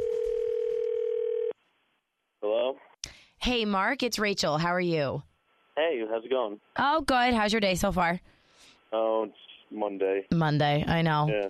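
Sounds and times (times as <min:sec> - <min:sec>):
telephone ringing tone before call connects: 0:00.0 - 0:01.6
speech: 0:03.4 - 0:11.4.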